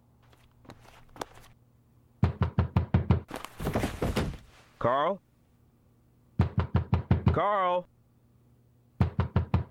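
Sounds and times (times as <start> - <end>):
heavy pounding knocks on a door: 2.2 - 3.3, 6.4 - 7.4, 9.0 - 9.6
man calling out: 4.8 - 5.2, 7.3 - 7.9
speech: 4.8 - 5.3, 7.4 - 7.9.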